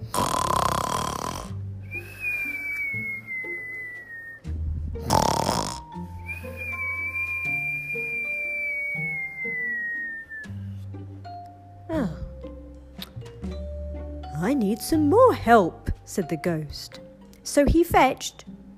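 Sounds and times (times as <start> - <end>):
voice imitating snoring: 0.0 - 1.6, 5.0 - 6.1
soft music: 0.0 - 18.7
speech: 14.5 - 18.6.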